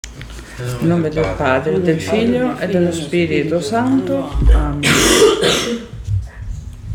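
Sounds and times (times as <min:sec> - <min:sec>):
low noise: 0:00.0 - 0:06.9
speech: 0:00.6 - 0:06.0
person coughing: 0:04.5 - 0:05.9.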